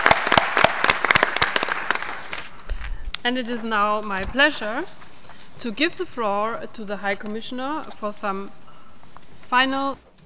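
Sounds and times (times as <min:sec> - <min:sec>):
audience applause at a pledging conference: 0:00.0 - 0:02.5
speech: 0:03.2 - 0:05.0, 0:05.6 - 0:08.6, 0:09.5 - 0:10.1.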